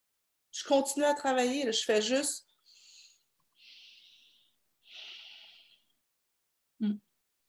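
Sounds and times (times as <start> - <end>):
speech: 0.6 - 2.5, 6.8 - 7.1
slow deliberately noisy breathing to ease stress: 2.6 - 5.9.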